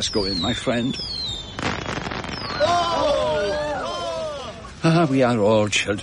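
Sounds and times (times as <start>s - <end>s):
speech: 0.0s - 1.4s, 4.8s - 6.0s
fireworks crackling pops at a party: 0.0s - 2.9s
shrill whistling firework rockets at a party: 0.0s - 4.1s.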